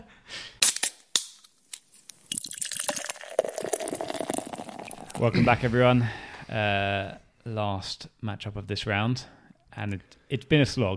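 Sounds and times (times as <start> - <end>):
beer can cracking open with metallic pop and hiss: 0.6 - 5.2
beer pouring fizzing into a glass: 2.1 - 5.3
speech: 5.2 - 10.9.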